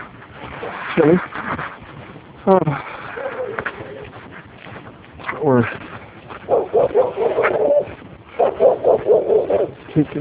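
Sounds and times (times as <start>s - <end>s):
speech: 1.0s - 1.4s, 2.4s - 2.9s
dogs barking: 3.0s - 4.2s, 6.4s - 9.9s
dog yips: 6.5s - 9.7s.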